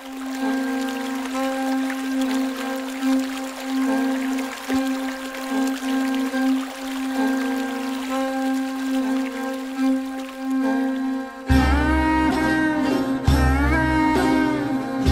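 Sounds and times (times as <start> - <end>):
low tonal hum: 0.0 - 15.0
river water flowing beneath an arched stone bridge: 0.0 - 15.0.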